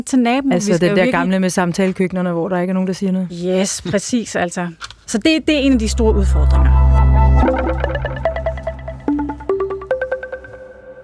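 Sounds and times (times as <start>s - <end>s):
speech: 0.0s - 8.0s
loud sustained low chord of a radio jingle: 5.4s - 10.6s
rhythmic run of bright plucked synth notes stepping upward in pitch: 5.4s - 11.0s.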